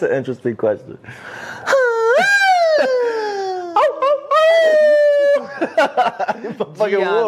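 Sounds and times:
speech: 0.0 - 3.0, 5.6 - 7.2
man howling like a dog: 1.7 - 5.5
laughter: 1.8 - 7.2.

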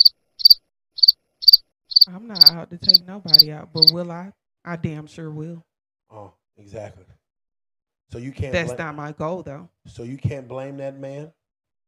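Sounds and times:
crickets chirping: 0.0 - 3.9
speech: 2.1 - 7.2, 8.1 - 11.4.

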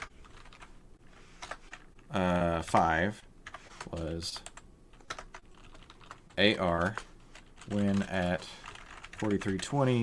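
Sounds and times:
typing on a computer keyboard: 0.0 - 0.7, 3.5 - 10.0
speech: 2.1 - 3.3, 3.9 - 4.5, 6.4 - 7.1, 7.7 - 8.6, 9.2 - 10.0.

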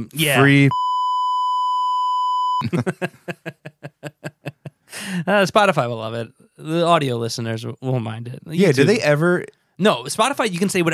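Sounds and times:
speech: 0.0 - 0.8, 2.6 - 3.6, 5.1 - 10.9
censor bleep tone: 0.4 - 2.6
rhythmic breathy bursts of laughter: 2.6 - 5.1.

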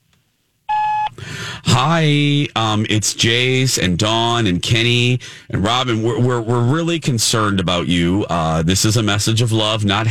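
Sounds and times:
voicemail beep: 0.7 - 1.2
speech: 1.7 - 10.0.

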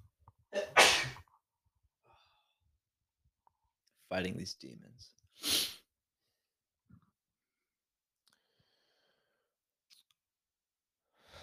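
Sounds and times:
person sneezing: 0.6 - 1.2
speech: 4.1 - 5.6.

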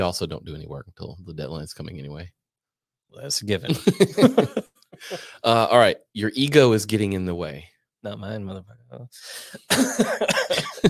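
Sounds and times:
speech: 0.0 - 2.4, 3.1 - 10.8
laughter: 3.6 - 5.7, 9.4 - 10.8
person coughing in a raspy fit: 4.0 - 5.4, 9.5 - 10.8.

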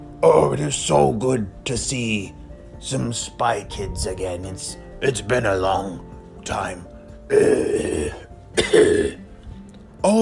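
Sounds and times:
speech: 0.2 - 9.2
person voicing a fire-breathing dragon coughing: 7.7 - 9.2.

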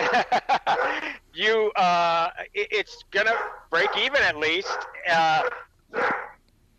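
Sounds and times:
puppy barking with a deep bark: 0.0 - 1.1, 3.2 - 6.4
laughter: 0.0 - 1.4
speech: 0.1 - 0.5, 1.4 - 6.2.

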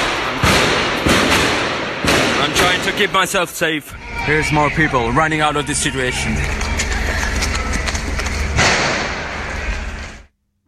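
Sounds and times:
police gunshots in a city street near a bridge: 0.0 - 3.2
continuous noise: 0.0 - 10.6
speech: 2.9 - 6.7.

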